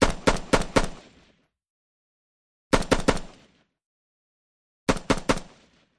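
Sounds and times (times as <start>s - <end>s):
M16 rifle repeating single shots: 0.0s - 1.4s, 2.7s - 3.7s, 4.9s - 5.9s.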